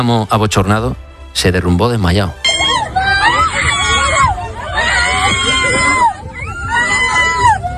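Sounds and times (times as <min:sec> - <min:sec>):
speech: 0:00.0 - 0:02.5
crowd babble: 0:02.4 - 0:07.7
several women shouting and shrieking in a fight: 0:02.4 - 0:07.7.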